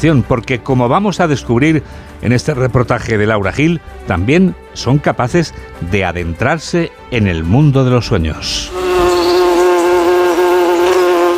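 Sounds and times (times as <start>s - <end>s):
speech: 0.0s - 9.3s
bee swarm buzzing: 8.7s - 11.3s.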